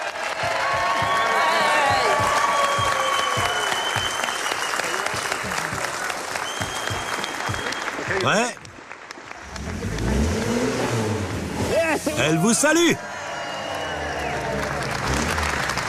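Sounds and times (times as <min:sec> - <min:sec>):
loud applause from a large crowd: 0:00.0 - 0:11.0, 0:12.2 - 0:15.8
whistles from a crowd: 0:01.0 - 0:05.2, 0:06.3 - 0:08.2, 0:13.4 - 0:14.4
speech: 0:08.2 - 0:08.6, 0:12.3 - 0:13.1.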